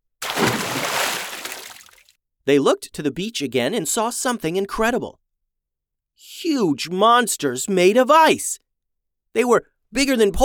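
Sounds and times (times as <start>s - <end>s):
objects splashing into water: 0.2s - 2.0s
speech: 2.4s - 5.2s, 6.2s - 8.6s, 9.3s - 10.4s.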